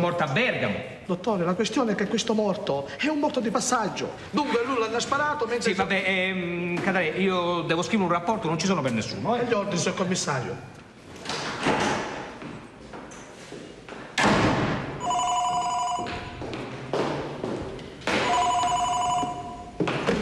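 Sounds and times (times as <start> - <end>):
speech: 0.0 - 10.8
room noise: 0.0 - 20.2
telephone ringing in trilling bursts: 15.0 - 16.4, 18.2 - 19.8.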